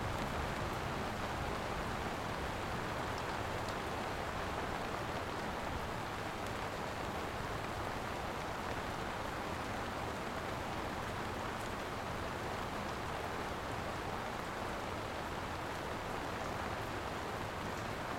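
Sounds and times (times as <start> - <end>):
rain drumming on a garage roof: 0.0 - 18.1.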